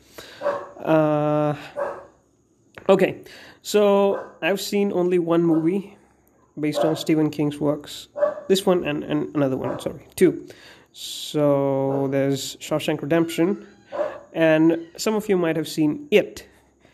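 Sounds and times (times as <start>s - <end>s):
dog barking: 0.4s - 0.8s, 1.7s - 2.2s, 4.1s - 4.4s, 5.5s - 5.8s, 6.4s - 7.1s, 8.2s - 8.6s, 9.6s - 10.0s, 11.9s - 12.2s, 13.9s - 14.3s
speech: 0.8s - 1.8s, 2.9s - 6.0s, 6.6s - 16.5s.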